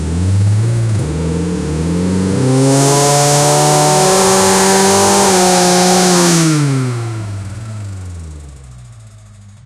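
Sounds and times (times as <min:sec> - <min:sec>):
2CV flat-twin engine accelerating: 0:00.0 - 0:09.6.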